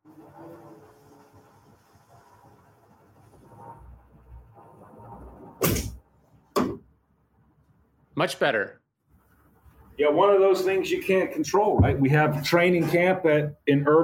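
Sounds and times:
door shutting: 5.6s - 6.9s, 11.6s - 13.0s
speech: 8.2s - 8.8s, 10.0s - 14.0s.

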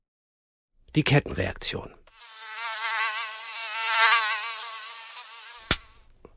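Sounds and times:
speech: 1.0s - 2.0s
mosquito whining as it hovers: 2.2s - 6.0s
sharp slap: 5.6s - 6.0s.

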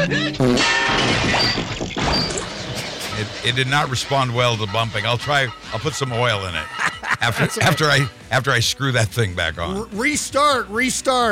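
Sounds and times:
clanking smashing metallic crashing sound effect for servers crashing: 0.6s - 3.2s
warbling electronic tones: 1.2s - 4.1s
laughter: 2.8s - 8.1s
speech: 3.4s - 11.3s.

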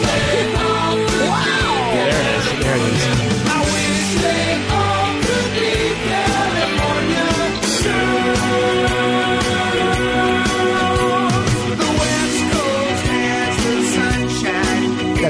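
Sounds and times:
loud rock track with pounding drums and dense guitars: 0.0s - 15.2s
singer letting out a long rising scream: 1.1s - 3.2s.

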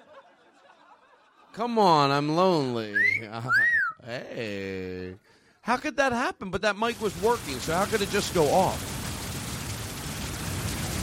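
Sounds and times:
laughter: 0.0s - 1.6s, 2.8s - 4.5s
speech: 1.6s - 9.0s
rain sound effect hiss resembling static noise: 6.9s - 11.0s.

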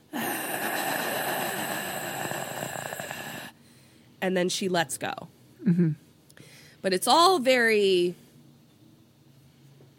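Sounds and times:
voice imitating rasping breath of someone being choked by the trachea: 0.0s - 3.6s
speech: 4.2s - 6.0s, 6.8s - 8.2s.

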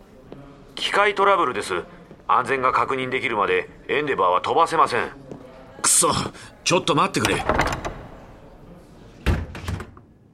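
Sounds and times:
speech: 0.8s - 5.2s, 5.9s - 7.7s
office door kicked shut: 7.2s - 8.3s, 9.2s - 10.0s
office door rattling as it settles: 7.2s - 8.3s.

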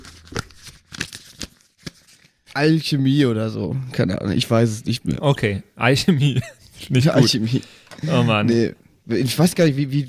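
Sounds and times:
rustling and crinkling of paper sheets being rummaged through: 0.0s - 2.6s
speech: 2.6s - 10.0s
laughter: 6.1s - 8.5s.

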